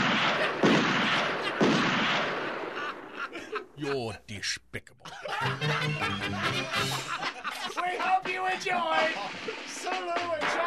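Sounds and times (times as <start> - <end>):
gunshot sound effects: 0.0 - 3.1
laughter: 2.6 - 4.1, 4.9 - 9.8
speech: 3.8 - 10.6.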